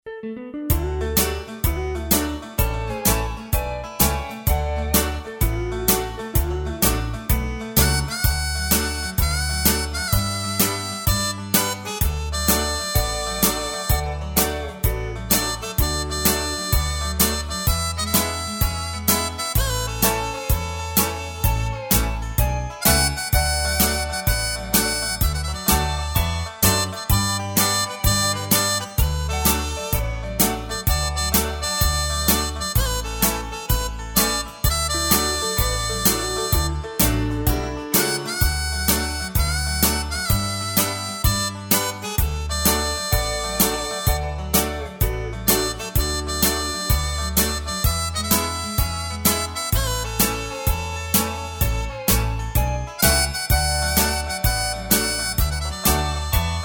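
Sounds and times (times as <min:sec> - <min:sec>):
music: 0:00.0 - 0:56.6.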